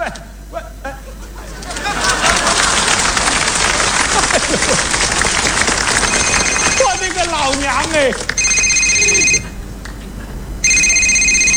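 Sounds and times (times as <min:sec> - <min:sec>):
laughter: 0:00.0 - 0:10.5
telephone ringing with an electronic warbling trill: 0:05.8 - 0:09.6, 0:10.6 - 0:11.5.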